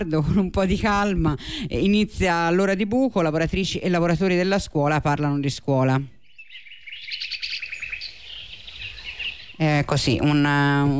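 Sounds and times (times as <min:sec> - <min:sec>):
speech: 0:00.0 - 0:06.2, 0:09.6 - 0:10.9
birds chirping at the opening of a rock song: 0:03.4 - 0:10.9.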